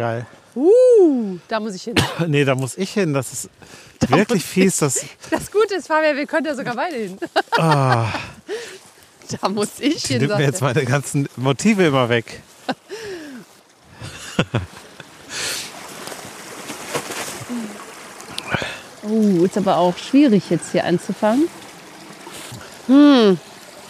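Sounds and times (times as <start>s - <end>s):
speech: 0.0s - 8.7s, 9.3s - 13.1s, 19.1s - 21.6s, 22.9s - 23.5s
stream water rushing and babbling: 2.3s - 23.8s
laughter: 4.0s - 5.5s, 7.1s - 8.6s, 9.9s - 11.0s, 14.0s - 15.0s
people calling out: 7.6s - 8.2s, 9.7s - 10.8s.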